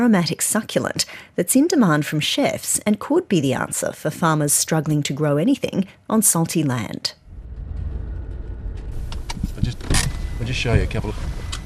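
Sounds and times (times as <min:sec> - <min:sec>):
speech: 0:00.0 - 0:07.2, 0:10.4 - 0:11.3
car engine and road rumble driving along salt flats: 0:07.2 - 0:11.6.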